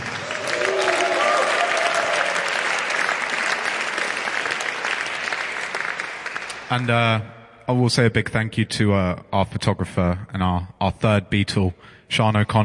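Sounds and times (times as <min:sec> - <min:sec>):
crowd whoops: 0:00.0 - 0:03.3
crowd applause for the keyboard player: 0:00.0 - 0:06.9
speech: 0:06.7 - 0:12.6.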